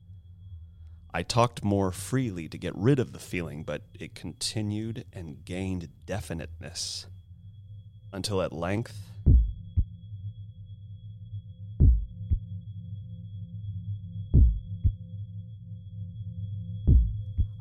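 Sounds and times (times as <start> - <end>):
low droning hum: 0.0 - 17.6
speech: 1.1 - 7.2, 8.1 - 9.1
heartbeat sound effect thumps: 9.2 - 9.9, 11.8 - 12.4, 14.3 - 15.0, 16.9 - 17.6.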